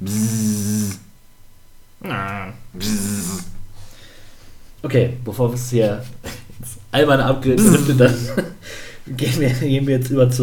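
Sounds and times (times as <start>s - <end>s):
voice imitating a Formula 1 racing car engine: 0.0s - 1.1s, 2.0s - 3.6s
speech: 4.9s - 6.2s, 6.9s - 10.4s
laughter: 7.5s - 8.6s.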